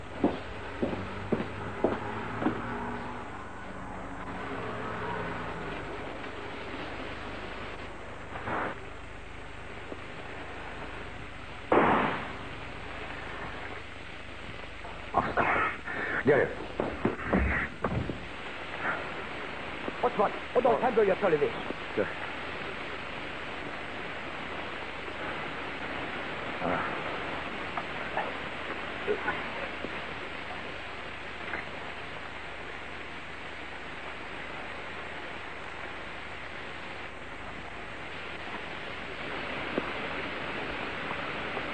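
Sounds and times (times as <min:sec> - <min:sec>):
car pulling up at night with engine droning: 0:00.0 - 0:15.2
hiss: 0:00.0 - 0:41.7
gunshot fired at a woman: 0:11.7 - 0:12.4
people talking: 0:14.8 - 0:17.7, 0:19.9 - 0:22.4, 0:26.6 - 0:27.1, 0:29.0 - 0:30.7.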